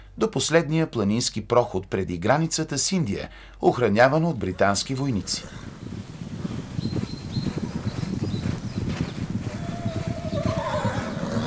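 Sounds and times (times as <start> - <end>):
speech: 0.2 - 5.8
many horse hooves pounding in a gallop: 4.6 - 11.4
horse high wavering whinny: 9.5 - 11.4.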